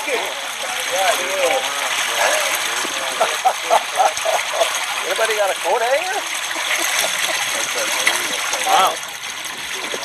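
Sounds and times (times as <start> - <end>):
indistinct voices murmuring: 0.0 - 10.0
water rushing downhill: 0.0 - 10.0
laughter: 0.2 - 8.9
speech: 5.4 - 6.4, 8.8 - 9.1.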